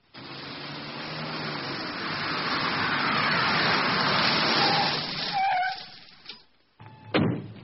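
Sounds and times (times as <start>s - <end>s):
Mercedes car approaching with engine and road noise: 0.0s - 7.6s
short sharp thumps: 6.8s - 7.6s.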